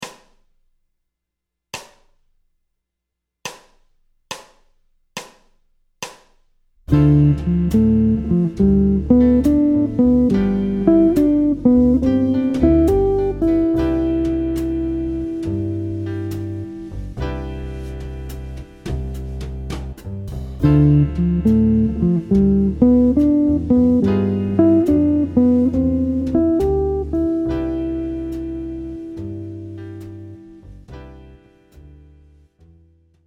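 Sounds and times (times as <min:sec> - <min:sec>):
jazz guitar phrase ii V7 I in C major: 0:06.9 - 0:18.2, 0:20.6 - 0:30.8.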